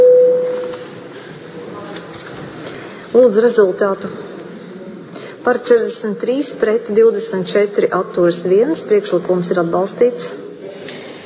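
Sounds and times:
electronic tone signalling voting mode in a parliament: 0.0s - 0.7s
faint noise: 0.0s - 11.2s
speech: 3.1s - 4.2s, 5.5s - 10.4s.

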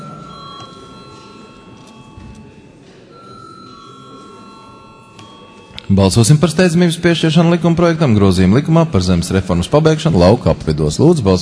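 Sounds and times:
parliament chamber bell ringing in a shrill electric tone: 0.0s - 6.5s
faint murmur of the room: 0.0s - 11.4s
speech: 5.9s - 11.4s.

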